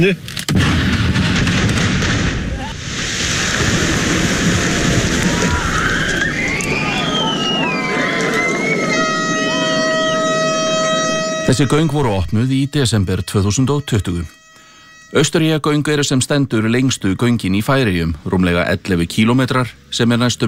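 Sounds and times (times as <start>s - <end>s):
speech: 0.0s - 0.8s, 11.5s - 14.4s, 15.1s - 20.4s
explosive blast in a subsea road tunnel under construction in the Faroe Islands: 0.5s - 11.1s
whistle-like tones: 5.6s - 16.1s.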